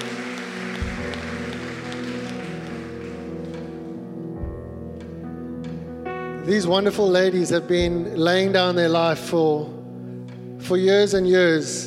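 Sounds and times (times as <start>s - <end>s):
audience applauding: 0.0s - 3.7s
sustained organ-like music: 0.0s - 11.8s
speech: 6.4s - 9.8s, 10.7s - 11.8s.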